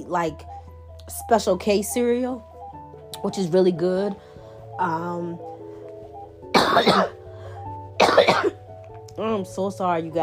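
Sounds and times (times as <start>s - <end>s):
speech: 0.0s - 2.5s, 3.2s - 5.5s, 6.7s - 7.2s, 9.2s - 10.2s
harsh coughs: 6.5s - 7.2s, 8.0s - 8.6s.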